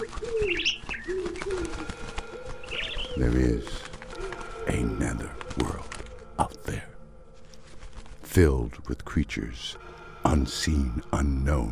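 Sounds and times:
pigeons cooing: 0:00.0 - 0:06.6
bird chirping: 0:00.0 - 0:07.4
speech: 0:03.2 - 0:03.8, 0:08.4 - 0:11.7.

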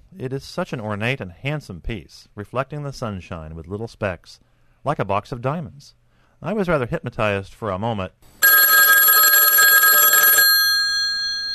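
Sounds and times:
speech: 0:00.1 - 0:08.4
telephone bell ringing: 0:08.4 - 0:11.5.

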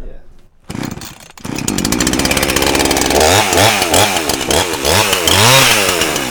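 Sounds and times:
chainsaw cutting into a Bradford pear log: 0:00.7 - 0:06.2.

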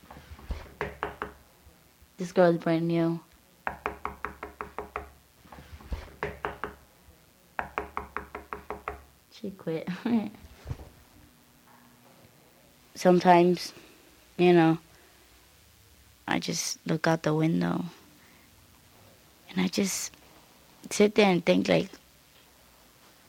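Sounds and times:
knocking on a wall: 0:00.5 - 0:01.4, 0:03.7 - 0:05.2, 0:05.9 - 0:06.8, 0:07.6 - 0:09.1
speech: 0:02.2 - 0:03.3, 0:09.4 - 0:10.4, 0:13.0 - 0:13.8, 0:14.4 - 0:14.8, 0:16.4 - 0:18.0, 0:19.6 - 0:20.2, 0:20.9 - 0:22.0.

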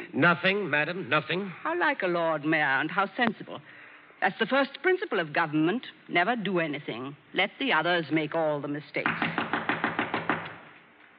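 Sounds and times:
speech: 0:00.2 - 0:09.3
knocking on a wooden door: 0:09.0 - 0:10.6.

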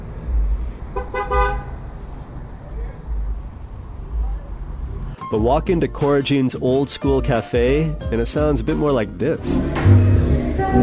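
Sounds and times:
low rumble of urban street traffic: 0:00.0 - 0:10.8
car horn honking in urban street traffic: 0:00.9 - 0:01.8
speech: 0:05.3 - 0:10.1.

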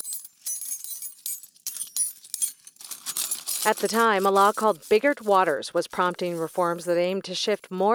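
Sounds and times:
metal house keys clinking and jangling together: 0:00.0 - 0:03.9
speech: 0:03.6 - 0:07.9.

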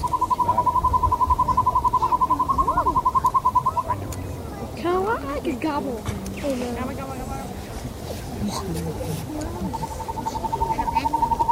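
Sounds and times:
northern hawk owl rolling trill of hoots: 0:00.0 - 0:04.0, 0:09.6 - 0:11.5
faint sounds: 0:00.0 - 0:11.5
speech: 0:05.6 - 0:07.1, 0:08.5 - 0:10.0.

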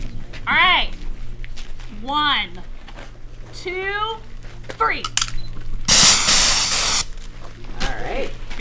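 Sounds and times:
low hum: 0:00.0 - 0:08.6
speech: 0:02.1 - 0:02.7, 0:03.6 - 0:05.3
bear spray aerosol can hissing blast: 0:05.9 - 0:07.1.

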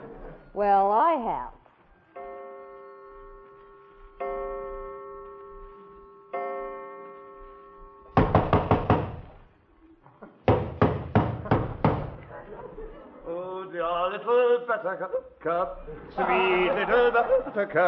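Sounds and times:
laughter: 0:00.0 - 0:00.6, 0:11.4 - 0:17.8
speech: 0:00.5 - 0:01.6, 0:13.8 - 0:17.8
doorbell-like chime tones: 0:02.2 - 0:08.2
heavy pounding on a door: 0:08.2 - 0:09.4, 0:10.4 - 0:12.2.

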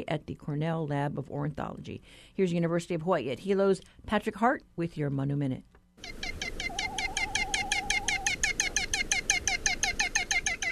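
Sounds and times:
speech: 0:00.0 - 0:06.2
great frigatebird harsh chattering call: 0:06.0 - 0:10.6
wavering whistled tone: 0:06.6 - 0:08.4.

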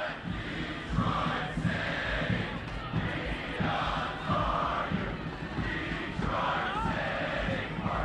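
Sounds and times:
stadium crowd of soccer fans cheering and chanting: 0:00.0 - 0:08.0
soccer fans yelling: 0:03.2 - 0:08.0.

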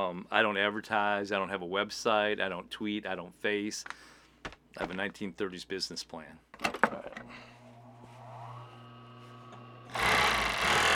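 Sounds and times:
speech: 0:00.0 - 0:07.5
old sewing machine stitching a scarf from red coyote skin: 0:09.9 - 0:10.9.

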